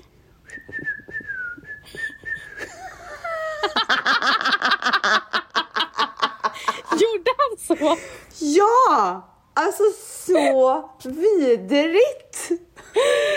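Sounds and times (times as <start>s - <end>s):
person whistling a wavering tone imitating a bad whistle: 0.4s - 2.7s
laughter: 1.9s - 7.2s
speech: 7.8s - 13.3s.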